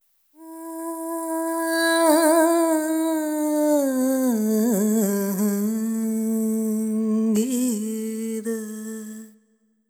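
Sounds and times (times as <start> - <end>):
woman singing ethnic vocals: 0.4 - 9.4.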